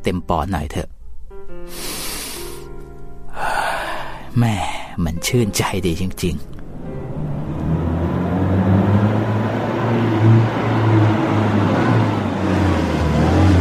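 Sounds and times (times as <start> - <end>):
speech: 0.0 - 0.9, 4.4 - 6.6
car engine rumbling as the car pulls up: 6.4 - 13.6.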